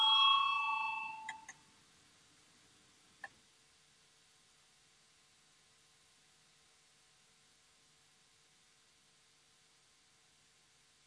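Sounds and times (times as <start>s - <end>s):
electric parliamentary voting bell ringing: 0.0s - 1.5s.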